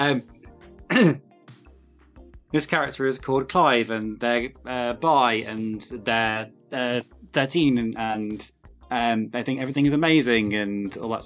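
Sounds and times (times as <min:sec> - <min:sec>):
speech: 0:00.0 - 0:00.3, 0:01.0 - 0:01.2, 0:02.5 - 0:11.2
person clearing throat: 0:00.9 - 0:01.2
person coughing: 0:00.9 - 0:01.2.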